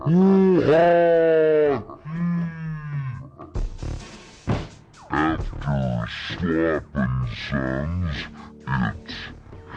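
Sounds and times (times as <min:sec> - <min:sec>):
speech: 0:00.0 - 0:01.9, 0:06.1 - 0:09.0
sheep bleating: 0:00.3 - 0:03.3.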